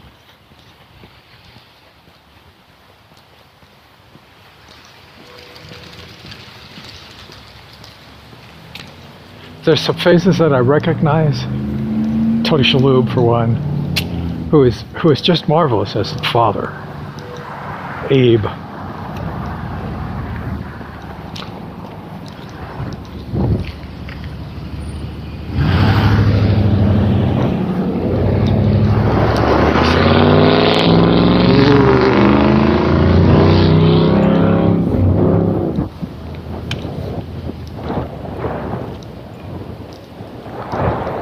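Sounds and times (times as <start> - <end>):
truck engine accelerating hard: 8.9 - 39.0
speech: 9.7 - 11.7, 12.5 - 13.7, 14.5 - 16.9, 18.1 - 18.6.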